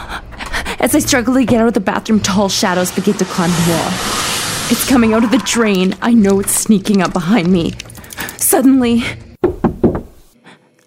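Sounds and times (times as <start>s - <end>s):
speech: 0.8s - 7.9s, 8.5s - 9.2s
knocks on a front door: 9.4s - 10.2s.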